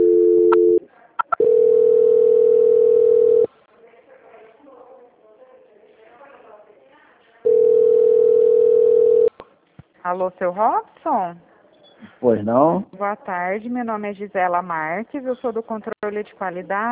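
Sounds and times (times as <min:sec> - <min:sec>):
electronic telephone tones during a call transfer: 0:00.0 - 0:03.5, 0:07.5 - 0:09.3
quick blips: 0:00.5 - 0:01.5
speech: 0:10.1 - 0:11.5, 0:12.2 - 0:16.9.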